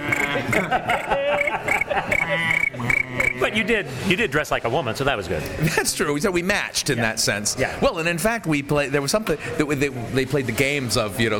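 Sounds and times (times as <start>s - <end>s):
laughter: 0.0s - 3.6s
speech: 0.4s - 1.1s, 3.6s - 11.3s
crickets chirping in a rhythmic pulse with high trills: 1.4s - 3.4s.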